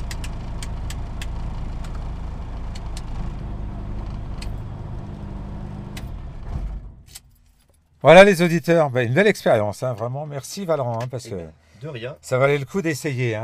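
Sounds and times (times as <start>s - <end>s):
aircraft engine winding down: 0.0s - 7.2s
speech: 8.0s - 13.4s.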